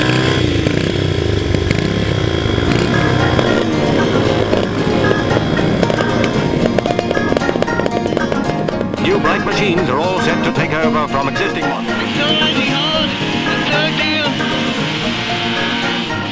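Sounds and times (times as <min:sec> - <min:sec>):
several motorcycle engines throbbing and revving: 0:00.0 - 0:16.3.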